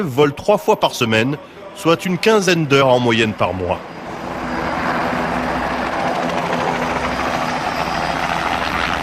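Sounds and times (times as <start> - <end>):
speech: 0.0 - 4.0
helicopter engine whining: 3.7 - 9.0.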